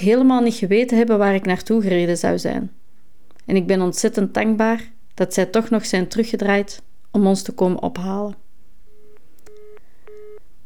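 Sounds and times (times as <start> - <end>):
speech: 0.0 - 2.8, 3.5 - 8.4
telephone ringing tone of an unanswered phone call: 8.9 - 10.6.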